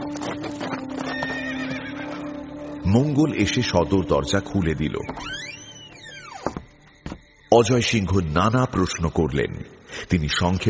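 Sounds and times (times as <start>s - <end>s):
horse galloping at full speed: 0.0s - 2.3s
horse neighing and whinnying: 1.0s - 2.4s
speech: 2.9s - 5.5s, 7.6s - 10.6s.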